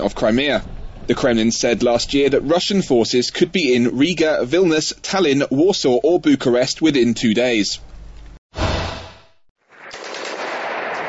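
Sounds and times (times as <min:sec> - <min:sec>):
speech: 0:00.0 - 0:07.9
machine gun fire: 0:09.7 - 0:11.0.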